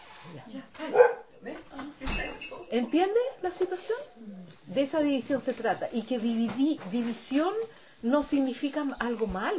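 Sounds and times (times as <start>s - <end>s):
dog barking in short sharp bursts: 0.8s - 1.3s
speech: 2.7s - 9.5s.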